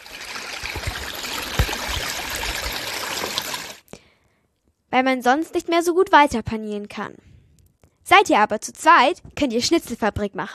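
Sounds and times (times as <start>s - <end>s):
tap water running while washing hands: 0.0s - 3.8s
speech: 4.9s - 7.3s, 8.1s - 10.5s.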